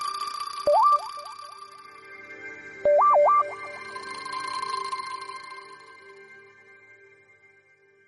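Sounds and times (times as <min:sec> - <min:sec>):
OnePlus phone alarm tone: 0:00.7 - 0:01.5, 0:02.9 - 0:04.9.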